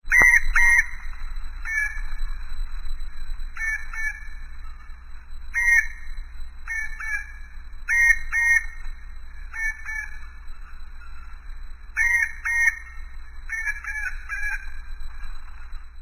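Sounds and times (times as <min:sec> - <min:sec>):
bird call: 0:00.1 - 0:02.4, 0:03.6 - 0:04.9, 0:05.5 - 0:08.9, 0:09.5 - 0:14.9.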